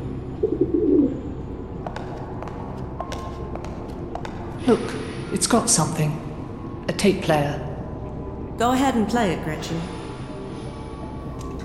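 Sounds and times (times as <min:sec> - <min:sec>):
pigeon cooing: 0:00.4 - 0:01.2
speech: 0:04.7 - 0:06.3, 0:06.9 - 0:07.7, 0:08.6 - 0:10.0.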